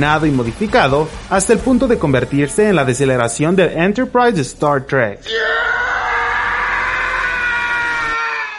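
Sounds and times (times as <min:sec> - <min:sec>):
speech: 0:00.0 - 0:05.7
man's long piercing falling scream sound effect: 0:05.2 - 0:08.5.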